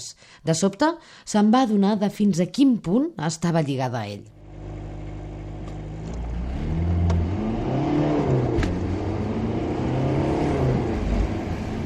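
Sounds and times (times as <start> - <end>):
speech: 0.0 - 4.4
car engine revving and driving: 4.4 - 11.8.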